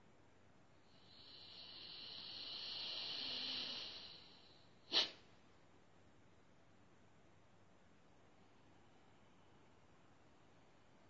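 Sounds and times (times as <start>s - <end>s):
long slow purification breath drawn through the nostrils: 0.9s - 5.2s
short sharp nasal exhale: 0.9s - 5.2s.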